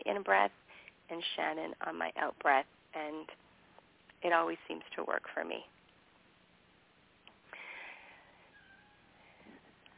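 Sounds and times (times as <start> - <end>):
speech: 0.2 - 3.4, 4.2 - 5.8
cat meowing: 8.5 - 9.2.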